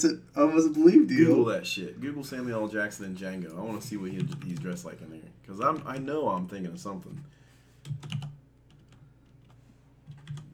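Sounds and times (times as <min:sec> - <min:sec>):
speech: 0:00.0 - 0:08.2
computer keyboard typing with sharp clicks: 0:03.8 - 0:04.9, 0:07.8 - 0:10.5.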